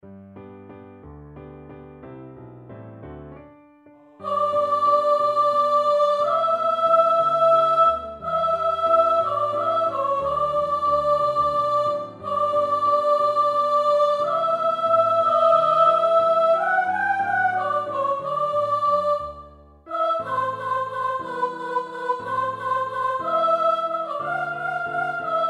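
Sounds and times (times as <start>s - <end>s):
soprano singing: 4.2s - 25.4s.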